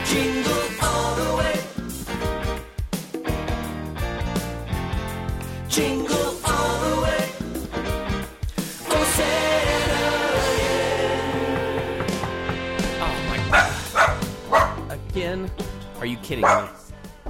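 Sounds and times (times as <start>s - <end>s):
upbeat music: 0.0s - 17.2s
speech: 0.1s - 0.5s, 5.8s - 6.0s, 15.4s - 16.8s
dog barking: 13.5s - 14.9s, 16.4s - 16.8s.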